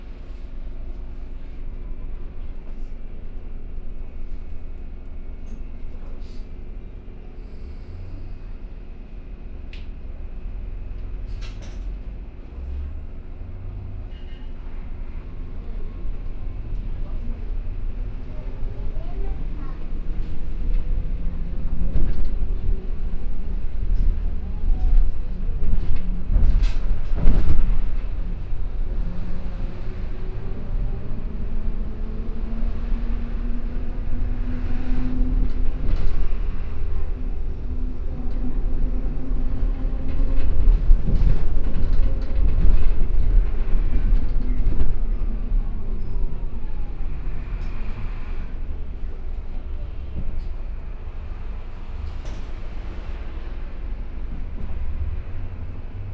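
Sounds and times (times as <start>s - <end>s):
electric bus in Brazil: 0.0s - 56.1s.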